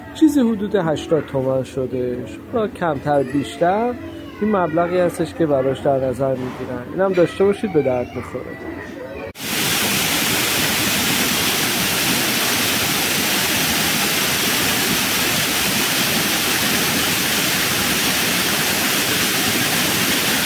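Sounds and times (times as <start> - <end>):
speech: 0.2 - 9.0
waterfall roaring: 9.4 - 20.4.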